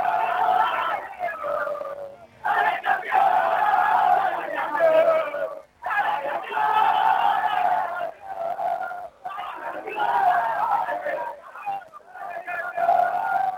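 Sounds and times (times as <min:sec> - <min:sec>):
football team cheering and chanting, celebrating a championship win: 0:00.0 - 0:13.5.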